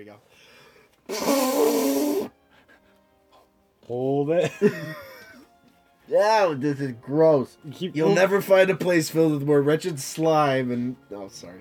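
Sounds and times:
speech: 0.0s - 1.9s, 3.9s - 5.1s, 6.1s - 11.5s
stuffy nose blown into a tissue: 1.0s - 2.8s
laughter: 4.4s - 5.5s.

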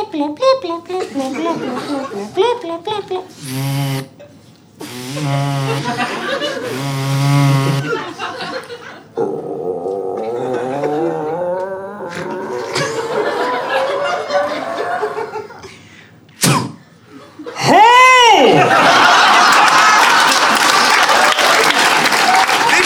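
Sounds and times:
man vocally imitating a robot pinging an elastic band: 0.0s - 4.2s, 4.8s - 6.0s, 9.2s - 13.4s
speech: 0.0s - 9.3s
laughter: 1.0s - 2.4s, 5.2s - 9.2s, 10.3s - 15.8s, 18.4s - 22.8s.

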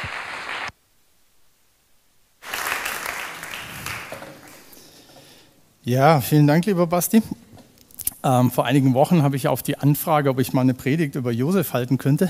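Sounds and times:
audience applause welcoming the speaker: 0.0s - 0.7s, 2.4s - 4.6s
speech: 5.8s - 7.4s, 8.2s - 12.2s.

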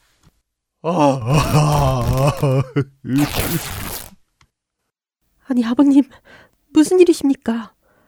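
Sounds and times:
speech: 0.8s - 1.7s, 2.3s - 4.0s, 5.5s - 7.8s
man wailing in anguish: 0.9s - 3.3s.

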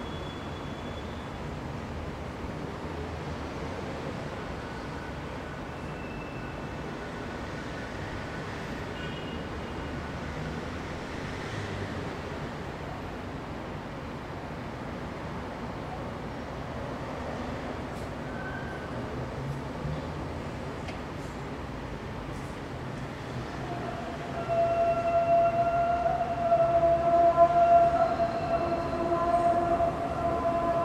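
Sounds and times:
stream of traffic with trains, trams and automobiles in The Hague: 0.0s - 30.8s.

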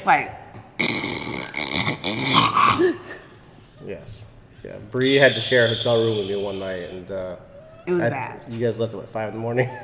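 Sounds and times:
speech: 0.0s - 1.0s, 2.1s - 3.2s, 3.8s - 9.8s
voice imitating a loud choking snore: 0.8s - 3.0s, 5.0s - 6.6s.

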